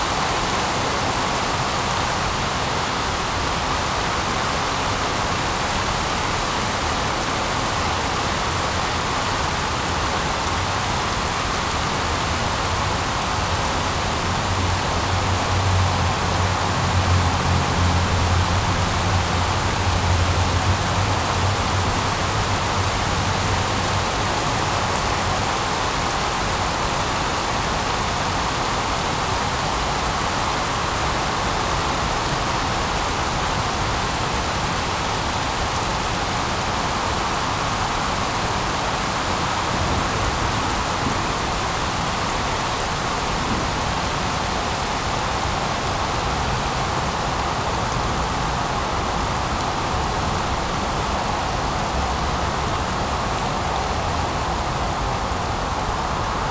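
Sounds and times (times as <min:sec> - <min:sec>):
heavy rain: 0:00.0 - 0:56.4.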